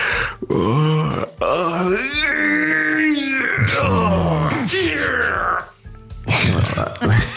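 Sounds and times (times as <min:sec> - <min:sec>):
voice imitating a woman's aggressive yawn with a stretch: 0:00.0 - 0:05.7
gruff grunts: 0:00.4 - 0:02.3, 0:03.0 - 0:05.7, 0:06.3 - 0:07.3.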